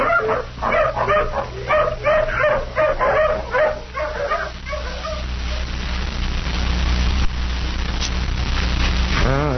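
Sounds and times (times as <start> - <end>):
tracking hound barking and yelping: 0.0 - 5.7
low steady rumble: 0.0 - 9.5.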